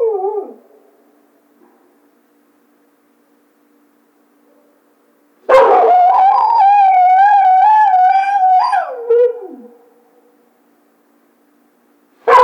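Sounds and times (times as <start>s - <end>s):
coyote howling: 5.5s - 9.8s.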